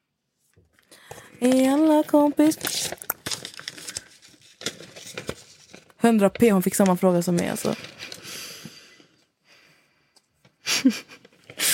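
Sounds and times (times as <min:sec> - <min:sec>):
dry paper envelope rustling and tearing as it is drawn and opened: 0:01.1 - 0:08.4
speech: 0:01.4 - 0:03.0, 0:06.0 - 0:08.0.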